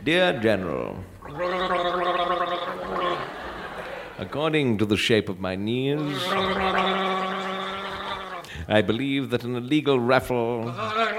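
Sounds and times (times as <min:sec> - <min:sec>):
speech: 0:00.0 - 0:02.4, 0:04.2 - 0:07.0, 0:08.7 - 0:11.1
person gargling fluid in the throat: 0:01.2 - 0:03.4, 0:06.0 - 0:08.6
laughter: 0:02.6 - 0:04.4, 0:06.0 - 0:08.4.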